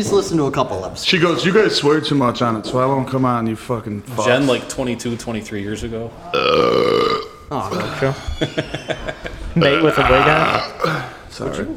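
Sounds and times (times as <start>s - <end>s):
speech: 0.0s - 11.7s
long loud droning belch: 6.2s - 8.2s, 9.6s - 11.3s
brief vocal sounds: 6.3s - 8.1s, 9.6s - 11.3s
laughter: 7.6s - 11.2s.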